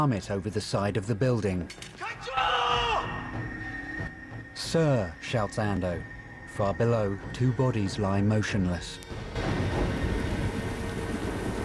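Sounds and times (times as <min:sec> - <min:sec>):
speech: 0:00.0 - 0:02.8, 0:04.6 - 0:09.6
heavy rain pouring down on a shipyard full of containers: 0:09.0 - 0:11.6.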